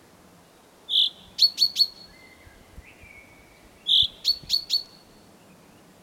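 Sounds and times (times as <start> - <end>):
Common chaffinch Fringilla coelebs giving sharp high call notes: 0.9 - 2.5, 3.1 - 5.2.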